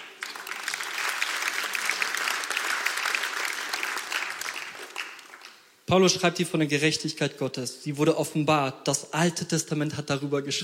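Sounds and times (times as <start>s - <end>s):
audience applause of many hands: 0.0s - 5.7s
speech: 5.9s - 10.6s.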